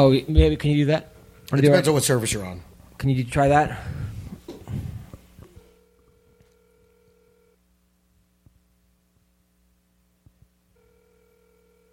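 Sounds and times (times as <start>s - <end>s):
speech: 0.0s - 4.0s
low hum: 0.0s - 11.9s
outgoing phone call electronic ringback tone: 5.6s - 7.6s, 10.8s - 11.9s.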